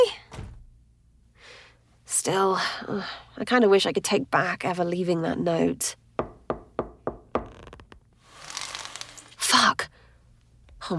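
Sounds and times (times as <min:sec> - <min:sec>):
speech: 0:02.2 - 0:06.0
knocking on a door: 0:06.2 - 0:07.5
soft rushing hiss: 0:08.2 - 0:09.5.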